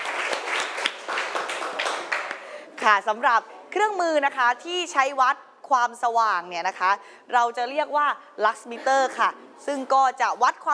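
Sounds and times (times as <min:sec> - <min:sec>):
applause of many hands clapping in a classroom: 0:00.0 - 0:02.6
speech: 0:02.8 - 0:10.7.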